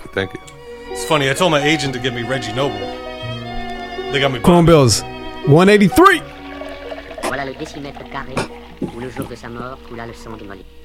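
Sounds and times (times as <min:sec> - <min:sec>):
podcast theme music with steady accompaniment: 0:00.0 - 0:10.8
speech: 0:00.1 - 0:03.0, 0:04.1 - 0:06.3, 0:07.5 - 0:10.8.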